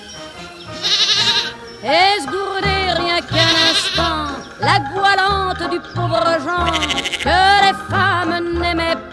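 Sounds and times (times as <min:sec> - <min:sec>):
goat bleating on a farm: 0:00.8 - 0:01.6, 0:03.2 - 0:04.4, 0:06.6 - 0:07.4
speech: 0:01.8 - 0:02.4, 0:04.6 - 0:08.8.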